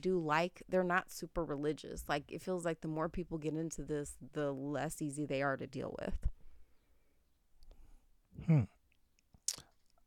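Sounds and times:
speech: 0:00.0 - 0:06.4, 0:08.4 - 0:08.8
person coughing: 0:08.4 - 0:08.7.

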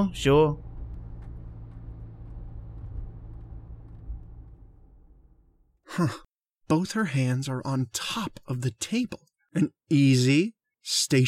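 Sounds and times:
speech: 0:00.0 - 0:00.6, 0:06.0 - 0:11.2
taxi cab engine rumbling while driving slowly and parking: 0:00.0 - 0:05.7.

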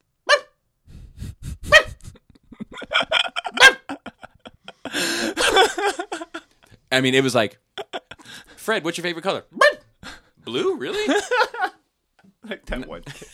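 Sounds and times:
dog barking: 0:00.3 - 0:00.5, 0:03.5 - 0:04.0, 0:09.6 - 0:09.9
laughter: 0:01.5 - 0:06.8, 0:07.8 - 0:08.6, 0:10.0 - 0:11.8, 0:12.5 - 0:13.3
speech: 0:06.9 - 0:07.6, 0:08.7 - 0:09.6, 0:10.4 - 0:11.5, 0:12.5 - 0:13.3.

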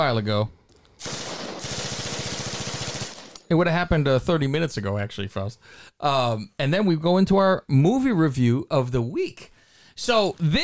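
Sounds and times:
speech: 0:00.0 - 0:01.2, 0:03.5 - 0:10.6
rapid automatic gunfire: 0:01.0 - 0:03.5.

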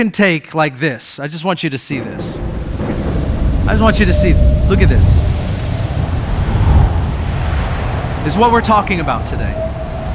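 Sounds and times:
speech: 0:00.0 - 0:02.9, 0:03.6 - 0:05.4, 0:08.2 - 0:09.7
stormy sea waves: 0:02.0 - 0:10.1
fierce wind: 0:02.3 - 0:10.1.

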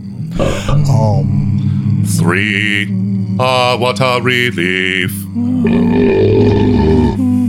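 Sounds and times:
loud drawn-out belch with a low croaky tone: 0:00.4 - 0:01.0, 0:05.6 - 0:07.2
speech: 0:02.1 - 0:06.8.

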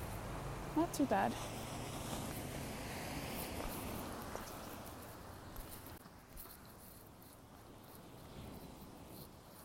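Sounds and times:
ocean surf washing ashore: 0:00.0 - 0:05.6
speech: 0:00.8 - 0:01.6.

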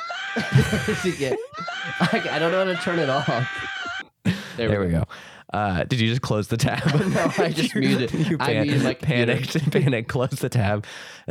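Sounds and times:
cartoonish video game character yelling in short bouncy vocal bursts: 0:00.0 - 0:04.0
laughter: 0:00.0 - 0:04.8, 0:06.6 - 0:10.1
speech: 0:00.4 - 0:03.8, 0:04.6 - 0:11.2.

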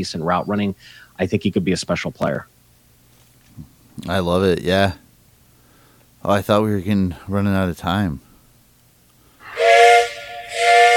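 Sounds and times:
speech: 0:00.0 - 0:02.5, 0:03.6 - 0:05.0, 0:06.2 - 0:08.2
steam train whistle sound effect: 0:09.4 - 0:10.9.

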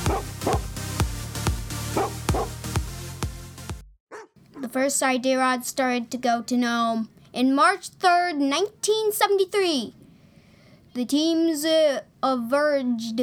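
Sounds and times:
swing dogs of a sled dog team barking and yipping on the trail: 0:00.1 - 0:00.7, 0:01.9 - 0:02.5
speech: 0:04.7 - 0:10.0, 0:10.9 - 0:13.2.

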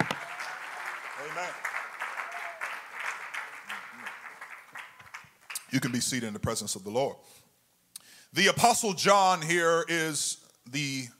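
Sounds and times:
church audience applauding during a service: 0:00.0 - 0:06.1
speech: 0:01.2 - 0:01.7, 0:05.7 - 0:07.5, 0:08.3 - 0:11.1.

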